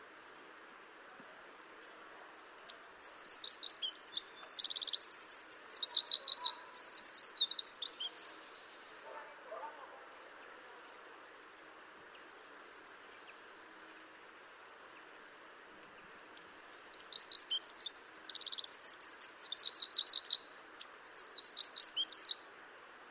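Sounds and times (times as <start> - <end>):
quiet hiss: 0.0 - 23.0
Eurasian wren Troglodytes troglodytes singing high trills and rattles: 2.7 - 8.7, 16.4 - 22.4.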